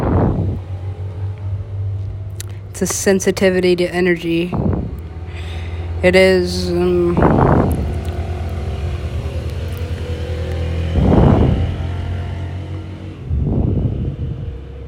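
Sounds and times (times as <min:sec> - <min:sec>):
constant low engine rumble of road traffic: 0:00.0 - 0:14.8
road traffic vehicles passing: 0:00.0 - 0:14.8
speech: 0:02.8 - 0:07.5.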